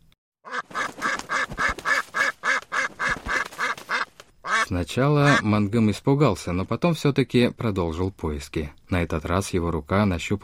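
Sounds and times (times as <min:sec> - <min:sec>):
duck quacking: 0:00.5 - 0:05.5
speech: 0:04.7 - 0:10.4.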